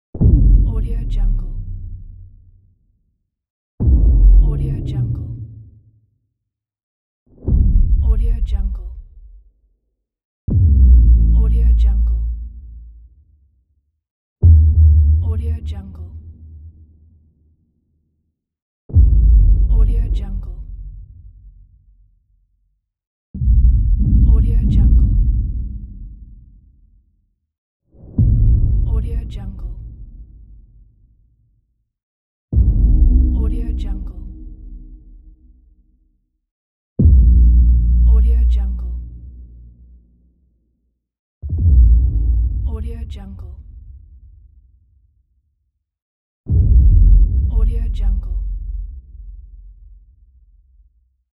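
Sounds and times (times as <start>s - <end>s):
deep bass rumble: 0.2s - 2.3s, 3.8s - 5.6s, 7.5s - 9.4s, 10.5s - 13.0s, 14.4s - 16.7s, 18.9s - 21.5s, 23.4s - 26.6s, 28.1s - 30.6s, 32.6s - 35.6s, 37.0s - 39.8s, 41.4s - 44.3s, 46.5s - 49.8s.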